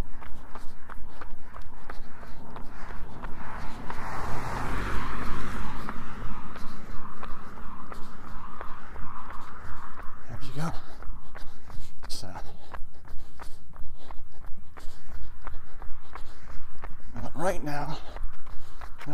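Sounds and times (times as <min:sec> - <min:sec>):
footsteps crunching outdoors: 0:00.0 - 0:19.1
car passing by: 0:01.9 - 0:10.8.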